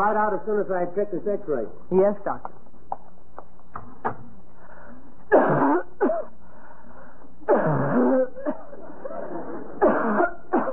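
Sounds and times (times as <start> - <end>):
speech: 0.0 - 2.6
woman breathing: 4.5 - 5.3, 6.3 - 7.5
woman coughing in harsh raspy bursts: 5.3 - 6.4, 7.5 - 8.8, 9.8 - 10.7
laughter: 8.4 - 9.8.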